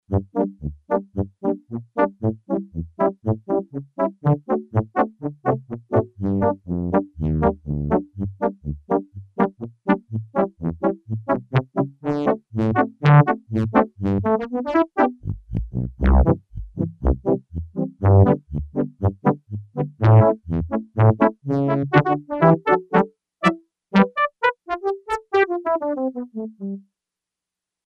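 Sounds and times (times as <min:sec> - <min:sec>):
brass band performance on a Yamaha TX802 synthesizer: 0:00.0 - 0:26.8.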